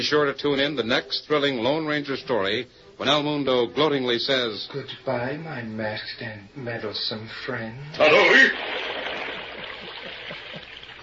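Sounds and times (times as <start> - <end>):
speech: 0.0 - 9.0
water pouring into a well: 8.0 - 11.0.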